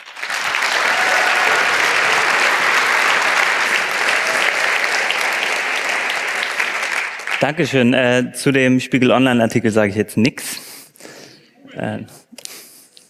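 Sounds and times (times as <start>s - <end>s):
large crowd applauding: 0.0s - 7.9s
speech: 7.4s - 10.6s, 11.8s - 12.3s.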